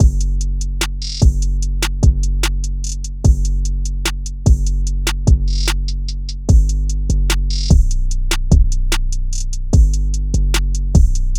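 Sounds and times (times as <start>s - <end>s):
drum loop at 148 BPM: 0.0s - 9.0s, 9.7s - 11.3s.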